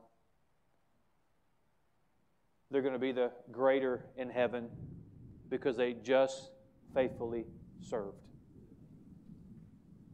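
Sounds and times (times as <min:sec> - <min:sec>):
speech: 0:02.7 - 0:08.3
distant thunder rumbling: 0:04.7 - 0:06.0, 0:06.8 - 0:10.1.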